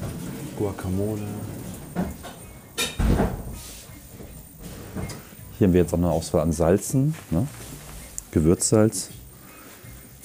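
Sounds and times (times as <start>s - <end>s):
automatic door sliding with a whoosh and soft thump: 0.0s - 3.7s
speech: 0.6s - 2.3s, 5.6s - 7.7s, 8.4s - 9.2s.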